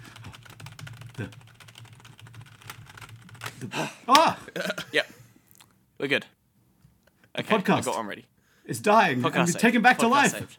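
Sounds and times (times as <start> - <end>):
fast forceful typing on a computer keyboard: 0.0 - 3.6
speech: 1.2 - 1.4, 3.6 - 5.1, 6.0 - 6.3, 7.4 - 10.5.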